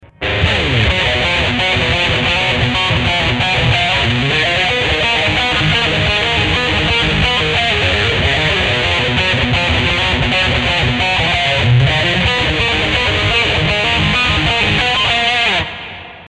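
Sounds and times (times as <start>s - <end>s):
distorted electric guitar: 0.0s - 16.2s.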